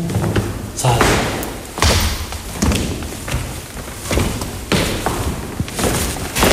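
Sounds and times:
faint shuffling: 0.0 - 6.5
footsteps climbing wide wooden stairs of an old school: 0.0 - 6.5
speech: 0.8 - 1.2.

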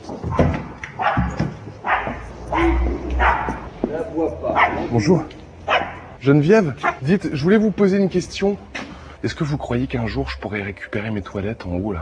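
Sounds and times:
dog barking: 0.3 - 3.7, 4.5 - 4.9, 5.7 - 6.2
speech: 4.9 - 5.4, 6.3 - 11.9.

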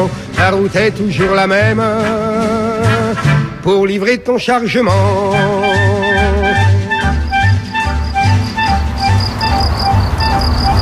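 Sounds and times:
speech: 0.0 - 5.8
regular low throbbing beats: 6.4 - 10.8
crickets chirping: 6.5 - 10.8
dense continuous buzzing drone: 7.0 - 10.8.

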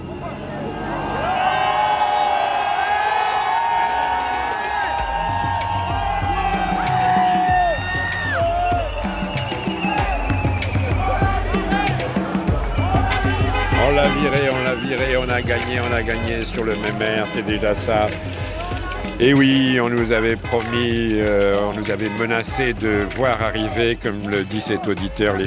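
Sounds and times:
large crowd cheering and shouting: 0.0 - 25.4
whoops and bellowing voices: 0.8 - 13.5
speech: 15.4 - 18.5, 19.2 - 25.4.

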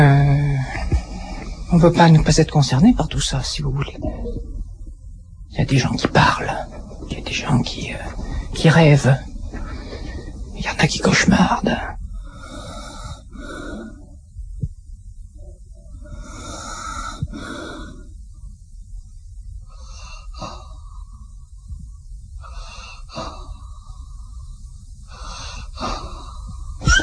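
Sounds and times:
low steady hum: 0.0 - 27.0
speech: 1.8 - 4.5, 5.5 - 9.3, 10.6 - 12.0
sleeping hospital patients breathing wheezily with snorts: 12.2 - 14.2, 16.0 - 18.1, 19.6 - 21.4, 22.4 - 27.0.

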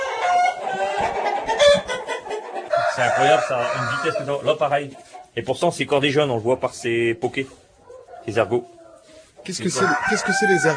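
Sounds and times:
roosters clucking and squawking: 0.0 - 10.7
rooster crowing: 2.7 - 4.3, 9.6 - 10.7
speech: 3.0 - 7.6, 8.2 - 8.8, 9.4 - 10.7.

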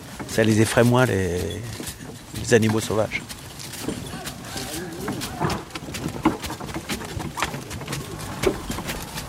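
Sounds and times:
continuous outdoor rustle: 0.0 - 9.2
hooves of several horses carrying riders clip-clopping: 0.0 - 9.2
speech: 0.2 - 3.4
faint murmuring voices: 3.9 - 5.9.

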